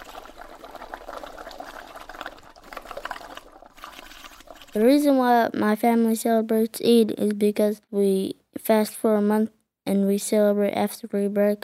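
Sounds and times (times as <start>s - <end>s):
hot oil crackling and bubbling while frying a meat-filled tortilla: 0.0s - 4.9s
speech: 4.7s - 11.6s.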